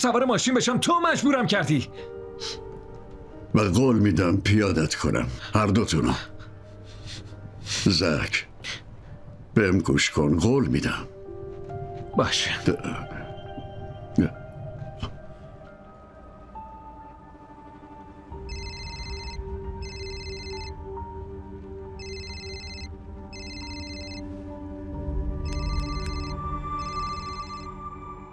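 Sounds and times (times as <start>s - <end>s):
speech: 0.0s - 2.6s, 3.5s - 6.3s, 7.8s - 8.8s, 9.6s - 11.2s, 12.2s - 13.2s, 14.2s - 14.4s
telephone ringing with a high electronic trill: 18.4s - 20.8s, 22.0s - 24.3s, 25.4s - 27.8s.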